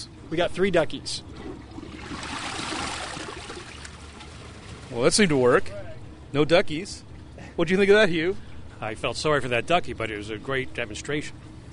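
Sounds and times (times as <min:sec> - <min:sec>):
speech: 0:00.3 - 0:01.9, 0:04.9 - 0:11.4
dual-flush toilet flushing on half-flush setting: 0:01.3 - 0:04.9.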